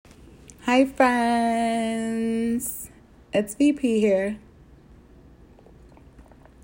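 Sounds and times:
speech: 0:00.7 - 0:04.4
person sipping coffee: 0:05.4 - 0:06.6
slurp: 0:05.4 - 0:06.6
soft wet mouth smacks: 0:05.6 - 0:06.6.

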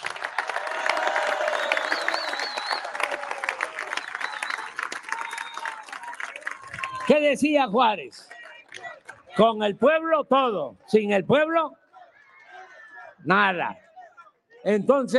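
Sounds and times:
large crowd applauding: 0:00.0 - 0:09.4
crowd cheering: 0:00.0 - 0:09.6, 0:11.9 - 0:14.1
whistling: 0:01.2 - 0:06.1
speech: 0:07.1 - 0:08.3, 0:09.4 - 0:11.8, 0:13.2 - 0:13.8, 0:14.6 - 0:15.1.

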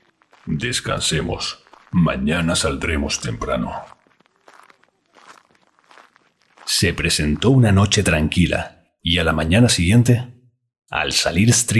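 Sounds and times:
soft crunching footsteps of someone walking toward huts in a village: 0:00.0 - 0:08.6
speech: 0:00.5 - 0:04.0, 0:06.8 - 0:11.7.

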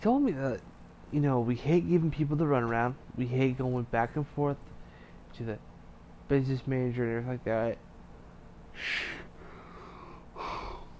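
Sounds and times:
speech: 0:00.0 - 0:04.7, 0:05.3 - 0:05.7, 0:06.3 - 0:07.8, 0:08.8 - 0:09.2
person yawning: 0:08.8 - 0:10.9.

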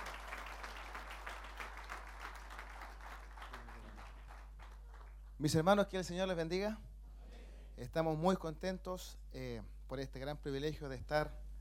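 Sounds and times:
church congregation applauding: 0:00.0 - 0:05.4
speech: 0:05.4 - 0:06.9, 0:07.8 - 0:11.4.

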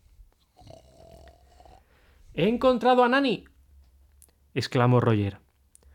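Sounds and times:
small puppy snoring asleep on a sofa: 0:00.6 - 0:01.8
speech: 0:02.4 - 0:03.5, 0:04.5 - 0:05.4.

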